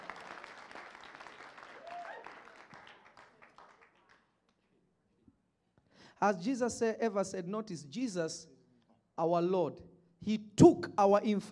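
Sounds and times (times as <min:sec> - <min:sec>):
audience clapping: 0:00.0 - 0:04.7
speech: 0:06.2 - 0:08.5, 0:09.2 - 0:11.5.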